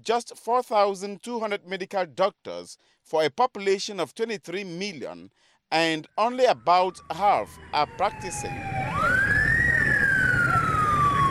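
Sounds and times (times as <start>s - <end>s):
speech: 0.0s - 8.9s
ambulance siren wailing while speeding toward a general hospital in Cameroon: 6.2s - 11.2s
low road rumble: 6.9s - 11.2s.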